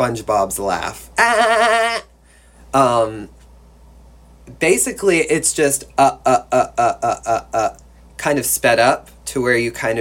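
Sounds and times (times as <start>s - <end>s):
speech: 0.0s - 2.1s, 2.7s - 3.4s, 4.5s - 9.9s
person imitating sheep baa bleats: 1.2s - 2.1s, 6.0s - 7.8s.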